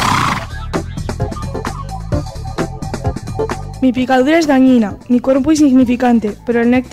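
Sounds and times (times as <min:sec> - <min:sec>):
horse neighing: 0:00.0 - 0:00.6
speech: 0:03.8 - 0:06.9.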